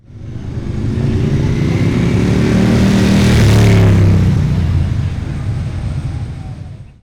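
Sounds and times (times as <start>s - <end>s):
Ducati motorcycle driving by left to right: 0.0s - 7.0s.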